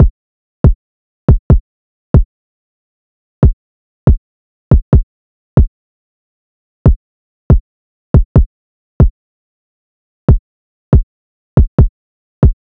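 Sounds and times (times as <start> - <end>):
kick drum loop at 140 BPM: 0.0 - 1.6, 3.4 - 5.0, 6.9 - 7.6, 8.2 - 9.1, 11.0 - 12.7.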